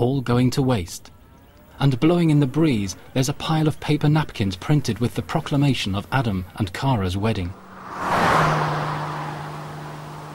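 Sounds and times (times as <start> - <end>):
speech: 0.0 - 1.2, 1.8 - 8.1
car engine roaring as it speeds into a village: 7.5 - 10.3.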